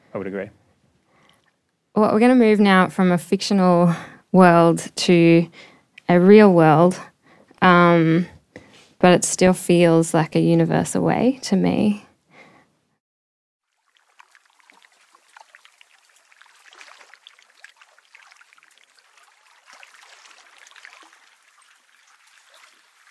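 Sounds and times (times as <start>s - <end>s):
speech: 0.1s - 0.6s, 2.0s - 8.3s, 9.0s - 12.1s
water around an iceberg in Antarctica fizzing and trickling: 13.6s - 23.0s.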